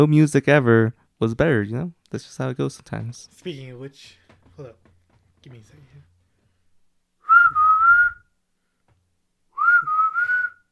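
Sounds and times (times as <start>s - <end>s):
speech: 0.0s - 4.8s, 5.4s - 6.1s
person whistling a tune into a microphone: 7.2s - 8.3s, 9.6s - 10.7s.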